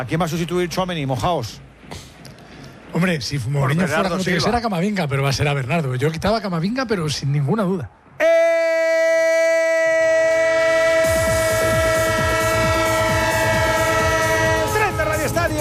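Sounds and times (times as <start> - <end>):
speech: 0.0 - 2.1, 2.9 - 8.8
train horn blast: 9.8 - 15.6.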